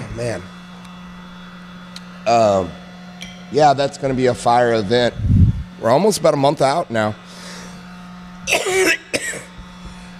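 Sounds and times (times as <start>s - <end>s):
steady low electrical hum: 0.0s - 10.1s
speech: 0.2s - 0.6s, 2.3s - 2.8s, 3.5s - 7.2s
rough throat-clearing: 8.5s - 9.5s
harsh cough: 8.5s - 9.6s.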